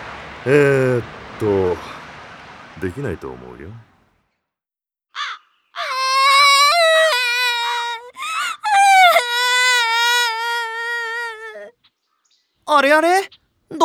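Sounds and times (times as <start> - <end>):
speech: 0.4 - 1.9, 2.8 - 3.9, 12.7 - 13.8
girl crying in a park: 5.8 - 11.7.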